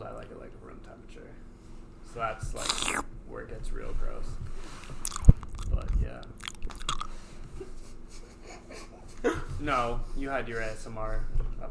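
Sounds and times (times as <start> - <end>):
speech: 0.2 - 5.0, 9.2 - 11.7
wet chewing into the microphone: 2.5 - 3.0, 4.7 - 7.6
crisp crunchy bites: 2.6 - 3.0, 4.8 - 7.3.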